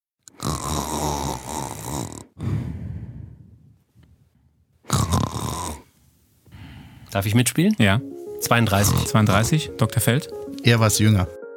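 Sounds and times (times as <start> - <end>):
man snoring loudly: 0.3 - 3.7, 4.9 - 5.9, 8.8 - 9.5
speech: 7.1 - 11.4.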